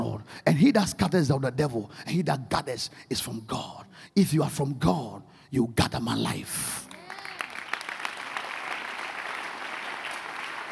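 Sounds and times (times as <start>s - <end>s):
speech: 0.3s - 6.9s
audience clapping hands in sustained applause: 6.9s - 10.7s.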